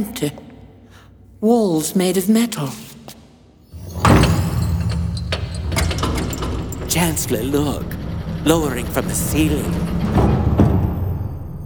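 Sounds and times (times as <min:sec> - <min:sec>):
speech: 0:00.0 - 0:00.4, 0:01.4 - 0:03.0, 0:06.9 - 0:10.0
heavy mechanical doors sliding open with a loud rush: 0:03.7 - 0:11.6
steady low rumble of heavy sliding doors: 0:03.8 - 0:11.6.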